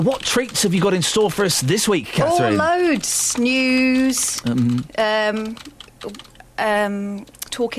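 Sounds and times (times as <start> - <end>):
frenetic typing on a computer keyboard: 0.0 - 1.2, 3.0 - 6.4
speech: 0.0 - 7.7.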